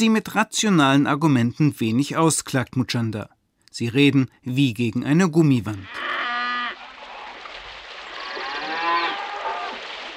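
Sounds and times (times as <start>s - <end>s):
speech: 0.0s - 6.2s
cattle mooing on open natural grazing land: 5.9s - 6.8s, 8.2s - 9.8s.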